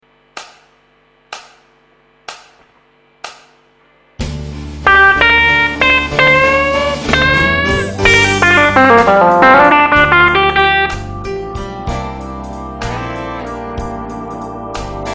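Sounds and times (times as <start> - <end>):
guitar lick: 4.8 - 14.3.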